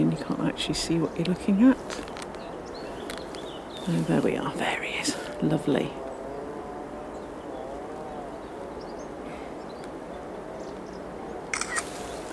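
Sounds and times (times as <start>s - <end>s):
soft outdoor hiss on a lowland heath: 0.0s - 12.3s
speech: 0.2s - 2.1s, 3.9s - 6.0s
camera shutter clicking during wildlife photography on a lowland heath: 11.5s - 11.9s.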